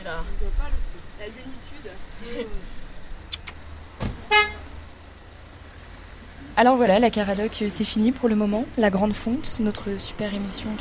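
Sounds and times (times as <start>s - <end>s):
steady low rumble of idling traffic: 0.0s - 10.7s
car horn honking from a queue of cars: 4.0s - 4.7s
speech: 6.6s - 10.7s.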